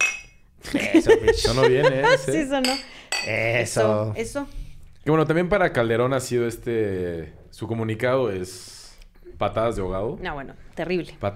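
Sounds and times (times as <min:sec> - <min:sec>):
glasses clinking in a toast: 0:00.0 - 0:00.4, 0:01.5 - 0:03.8
laughter: 0:00.6 - 0:02.6
speech: 0:00.9 - 0:11.3.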